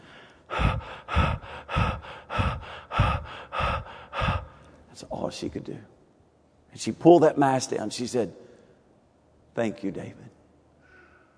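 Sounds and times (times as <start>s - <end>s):
voice imitating the labored gasping of a woman: 0.0s - 4.7s
speech: 5.3s - 6.0s, 6.8s - 8.4s, 9.6s - 10.4s.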